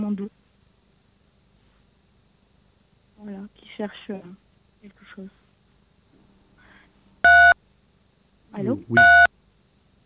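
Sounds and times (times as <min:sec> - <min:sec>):
speech: 0:00.0 - 0:00.5, 0:03.2 - 0:05.4, 0:08.5 - 0:09.3
telephone keypad tone from a caller pressing a key: 0:07.3 - 0:07.6, 0:09.0 - 0:09.3.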